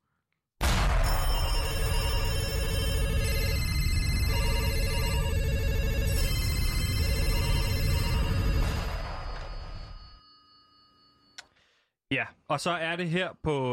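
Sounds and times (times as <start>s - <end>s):
radio jingle with layered musical tones: 0.7s - 10.2s
ringing telephone-like bell pattern: 1.0s - 11.4s
speech: 12.5s - 13.7s.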